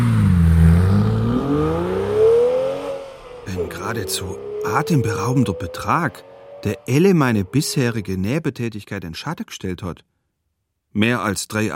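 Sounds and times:
sports car engine revving: 0.0s - 8.2s
speech: 3.9s - 10.1s, 10.9s - 11.7s.

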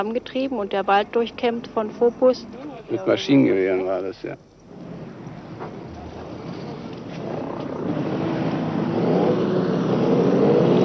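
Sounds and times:
speech: 0.0s - 4.5s
trucks and cars driving past: 0.0s - 10.8s
vehicle approaching with rising whine: 4.7s - 10.8s.

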